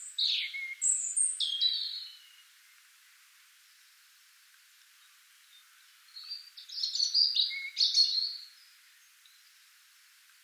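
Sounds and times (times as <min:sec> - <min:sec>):
European robin Erithacus rubecula singing: 0:00.0 - 0:02.5, 0:05.0 - 0:09.6.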